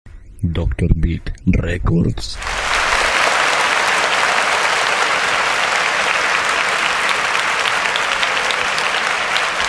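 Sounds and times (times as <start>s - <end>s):
speech: 0.4s - 2.5s
large audience applauding: 2.4s - 9.6s.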